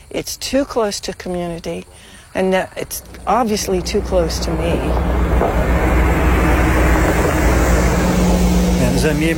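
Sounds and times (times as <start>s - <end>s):
speech: 0.1s - 5.9s, 9.0s - 9.3s
large bus engine rumbling past: 2.8s - 9.3s.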